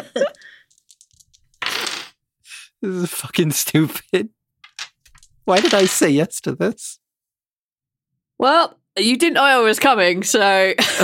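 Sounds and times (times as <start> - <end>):
dice rolled for a crowd-surfing attempt in a game: 0.3 - 2.1, 4.6 - 6.1
speech: 2.8 - 4.4, 5.5 - 7.0, 8.4 - 11.0.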